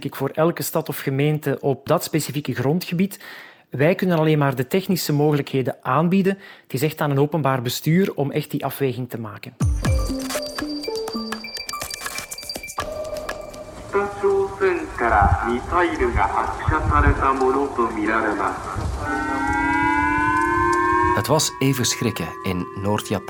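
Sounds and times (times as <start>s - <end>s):
speech: 0.0s - 9.9s, 15.0s - 19.6s, 21.2s - 23.2s
wailing missile warning signal over public loudspeakers: 11.5s - 15.6s, 19.0s - 23.2s
public loudspeaker alert electronic chime tones: 12.8s - 15.2s, 21.1s - 23.2s
person announcing over public loudspeakers: 13.9s - 19.2s, 21.1s - 23.2s.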